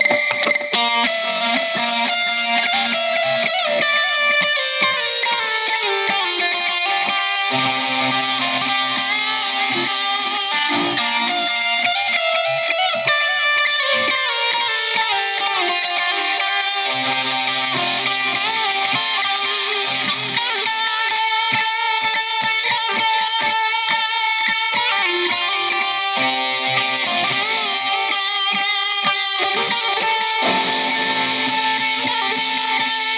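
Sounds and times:
heavily distorted electric guitar solo with delay effect: 0:00.0 - 0:33.1.

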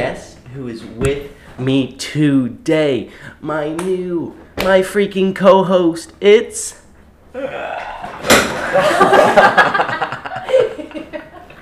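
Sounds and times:
speech: 0:00.0 - 0:06.8, 0:07.4 - 0:10.0
people laughing and chuckling: 0:07.5 - 0:11.6
chair breaking with a loud crack and clatter: 0:07.8 - 0:09.0.

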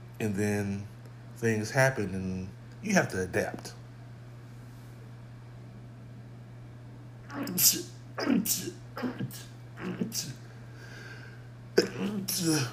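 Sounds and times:
steady low electrical hum: 0:00.0 - 0:12.7
speech: 0:00.2 - 0:03.8, 0:07.4 - 0:10.4, 0:11.8 - 0:12.7
person sneezing: 0:07.3 - 0:10.4, 0:11.8 - 0:12.7.

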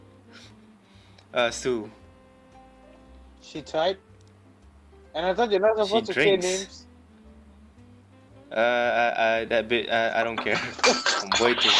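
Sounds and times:
speech: 0:01.3 - 0:02.0, 0:03.5 - 0:04.1, 0:05.2 - 0:06.8, 0:08.5 - 0:11.7
drinking glass dropped on a hard surface: 0:10.4 - 0:11.7.

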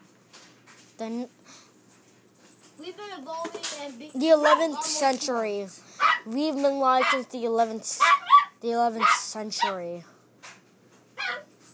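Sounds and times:
speech: 0:01.0 - 0:01.5, 0:02.8 - 0:10.1
dog barking: 0:04.4 - 0:04.8, 0:06.0 - 0:06.3, 0:07.0 - 0:07.3, 0:08.0 - 0:09.8, 0:11.2 - 0:11.5.

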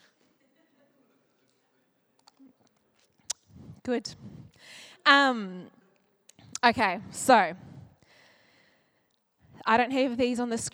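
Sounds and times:
mouth clicks: 0:03.3 - 0:04.6, 0:06.3 - 0:06.8
person sipping water: 0:03.3 - 0:04.6
speech: 0:03.9 - 0:05.8, 0:06.6 - 0:07.7, 0:09.6 - 0:10.7.

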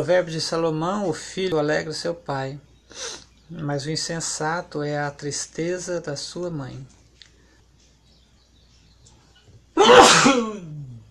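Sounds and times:
speech: 0:00.0 - 0:07.0, 0:09.8 - 0:10.5
single loud sneeze: 0:09.8 - 0:11.0.

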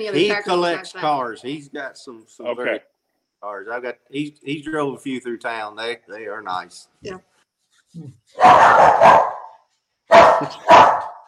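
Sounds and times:
speech: 0:00.0 - 0:07.3, 0:07.9 - 0:09.3, 0:10.4 - 0:10.8
heeler dog barking: 0:08.4 - 0:11.2.

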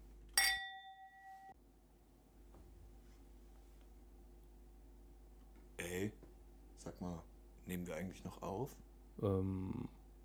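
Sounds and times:
glasses clinking in a toast: 0:00.4 - 0:01.6
speech: 0:06.8 - 0:09.9.

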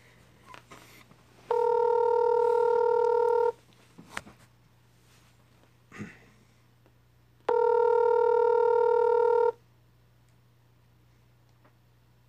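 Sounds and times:
telephone call tones as long steady electronic buzzes: 0:01.5 - 0:03.6, 0:07.5 - 0:09.6.

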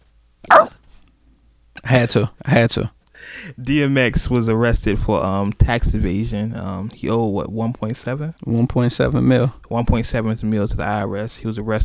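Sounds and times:
dog barking: 0:00.5 - 0:00.8
speech: 0:01.9 - 0:11.8.

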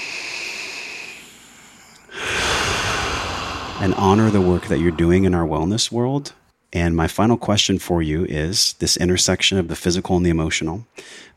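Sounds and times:
deep breath taken as a calming pause: 0:00.0 - 0:05.7, 0:11.0 - 0:11.3
sustained rush of air: 0:00.2 - 0:05.9
speech: 0:03.8 - 0:11.3.

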